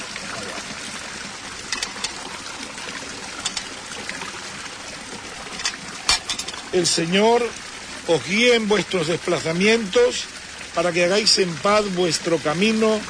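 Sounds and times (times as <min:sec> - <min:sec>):
holy water sprinkled during the blessing of a place: 0:00.0 - 0:13.0
speech: 0:06.7 - 0:13.0.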